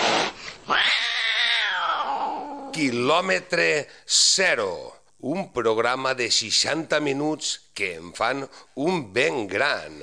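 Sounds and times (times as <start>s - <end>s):
cat yowling: 0.7s - 2.8s
speech: 2.8s - 10.0s.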